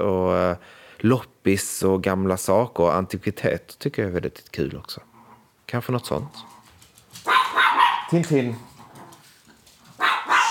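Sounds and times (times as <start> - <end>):
speech: 1.0 - 5.1, 5.7 - 6.6, 8.1 - 8.7
dog barking: 7.2 - 8.2, 10.0 - 10.5.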